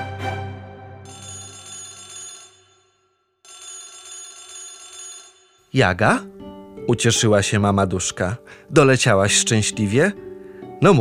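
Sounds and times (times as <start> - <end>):
mobile phone ringing in a handbag with a buzzing electronic tone: 1.1 - 2.8, 3.5 - 5.8
speech: 5.7 - 10.9.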